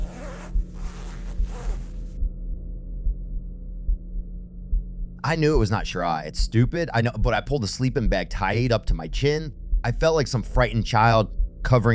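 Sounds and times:
tent zipper being slowly opened: 0.0 - 2.2
faint hum: 0.0 - 11.9
low steady heartbeat-like thumping: 0.0 - 11.9
speech: 5.3 - 11.9.

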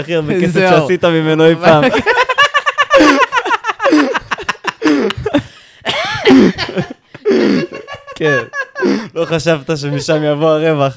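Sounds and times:
speech: 0.0 - 2.3, 8.2 - 10.9
people laughing loudly: 1.6 - 10.4
people coughing from laughing: 3.0 - 8.0.

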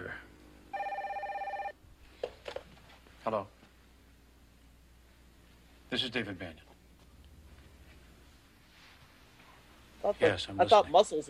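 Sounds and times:
electronic telephone ringing: 0.7 - 1.8
speech: 3.2 - 3.6, 5.9 - 6.7, 10.0 - 11.2.

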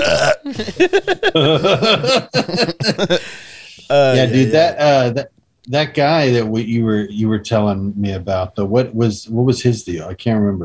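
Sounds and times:
long loud drawn-out belch: 0.0 - 0.6
laughter: 0.0 - 5.1
speech: 0.5 - 3.4, 4.3 - 10.6
brief higher-pitched vocal sound: 3.8 - 4.8.

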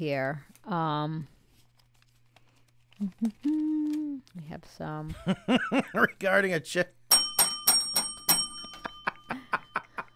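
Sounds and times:
speech: 0.0 - 1.4, 3.0 - 7.0
laughter: 5.2 - 6.2
big bell ringing: 7.1 - 10.0.

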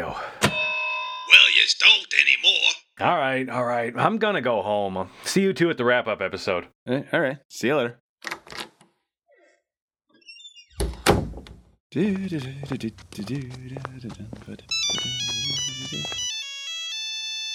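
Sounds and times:
speech: 1.6 - 8.3, 11.9 - 16.3
door-like thumps: 10.8 - 11.7
cell phone ringtone with a repeating electronic melody: 14.7 - 17.5.

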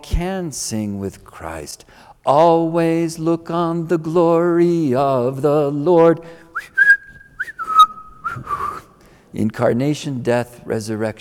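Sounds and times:
speech: 0.0 - 6.7, 9.3 - 11.1
person whistling a short cheerful tune: 6.6 - 8.9.

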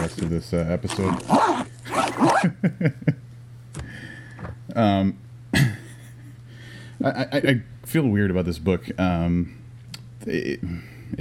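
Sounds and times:
zipper being zipped: 0.0 - 0.3, 0.9 - 2.5
speech: 0.1 - 1.6, 2.2 - 3.2, 4.8 - 5.7, 7.0 - 9.6, 10.2 - 11.1.

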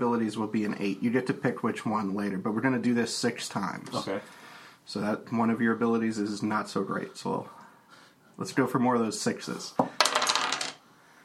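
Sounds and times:
speech: 0.0 - 7.6, 8.4 - 10.0
dice rolled across a table: 9.8 - 10.8.

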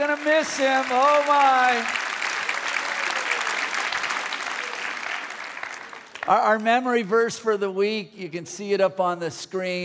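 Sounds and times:
speech: 0.0 - 2.0, 6.3 - 9.8
large audience applause: 0.0 - 6.6.

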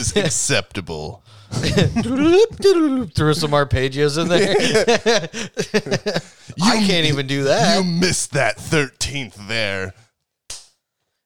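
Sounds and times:
speech: 0.0 - 10.0
laughter: 1.5 - 8.0
sharp slap: 10.5 - 10.8.

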